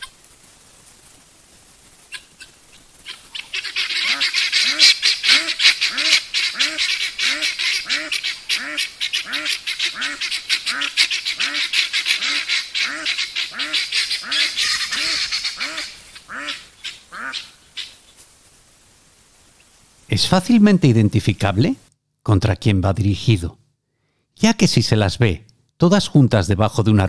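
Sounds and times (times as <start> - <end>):
flock of birds raising a group alarm call against a threat: 2.1 - 18.2
speech: 20.2 - 23.6, 24.5 - 27.0.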